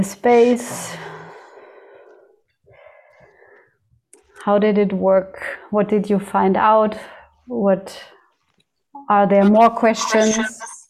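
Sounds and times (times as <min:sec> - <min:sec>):
speech: 0:00.0 - 0:01.1, 0:04.4 - 0:08.2, 0:09.1 - 0:10.7
group taking a deep breath in a coaching training session: 0:00.8 - 0:03.9.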